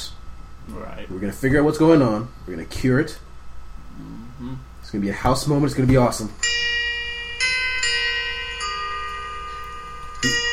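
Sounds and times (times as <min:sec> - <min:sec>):
speech: 0:00.7 - 0:03.3, 0:04.0 - 0:06.6
little cuckoo clock striking bright ringing chime tones: 0:06.4 - 0:10.5.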